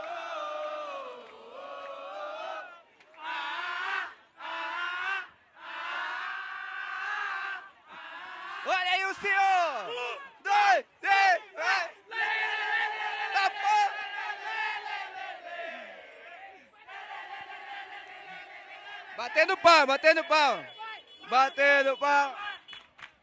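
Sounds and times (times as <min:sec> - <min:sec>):
large crowd of festival fans cheering and chanting: 0:00.0 - 0:22.8
speech: 0:08.6 - 0:10.9, 0:19.3 - 0:22.4.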